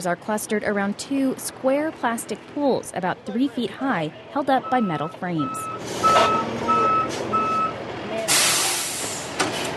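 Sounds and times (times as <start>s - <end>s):
speech: 0.0s - 6.6s
large truck engine rumble: 0.0s - 9.7s
large truck reversing alarm beeps: 4.6s - 7.8s
hissing air from large truck brakes: 8.3s - 9.7s.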